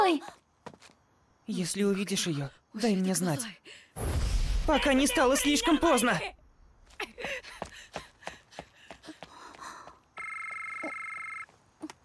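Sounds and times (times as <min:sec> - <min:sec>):
speech: 0:00.1 - 0:00.4, 0:01.5 - 0:06.4, 0:07.0 - 0:08.0
phone incoming-call electronic tone: 0:10.2 - 0:11.5.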